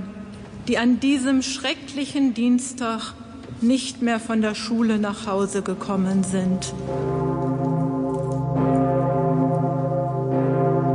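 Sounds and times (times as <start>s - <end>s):
speech: 0.7s - 7.4s
large deep cathedral bell tolling: 6.5s - 10.9s.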